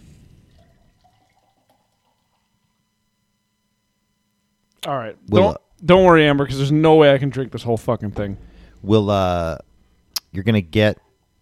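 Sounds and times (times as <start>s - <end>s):
tart 4% beer poured from a can into a glass: 0.5s - 2.8s
speech: 4.8s - 9.7s, 10.3s - 11.0s.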